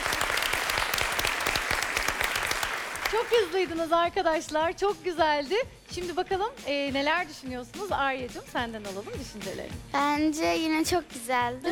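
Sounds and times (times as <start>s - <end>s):
audience applause at a quiz game: 0.0s - 3.5s
speech: 3.1s - 11.7s.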